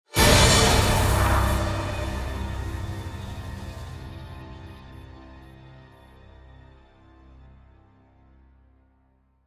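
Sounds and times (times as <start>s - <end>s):
feverish orchestra hit: 0.1s - 5.4s.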